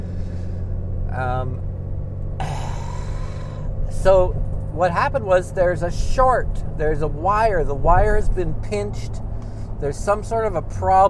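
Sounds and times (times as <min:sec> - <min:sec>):
pickup truck engine rumbling while driving: 0:00.0 - 0:11.0
road noise: 0:00.0 - 0:11.0
speech: 0:01.2 - 0:01.7, 0:03.9 - 0:09.2, 0:09.8 - 0:11.0.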